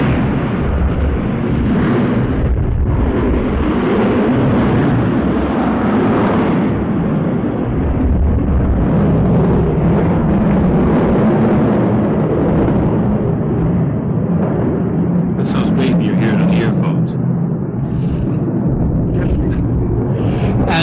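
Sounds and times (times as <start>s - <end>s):
airplane passing overhead: 0.0s - 20.8s.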